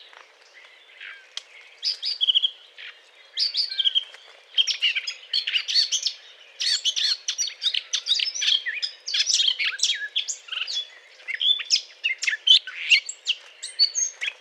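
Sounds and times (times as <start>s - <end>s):
Eurasian blackcap courtship song: 0.0s - 14.4s.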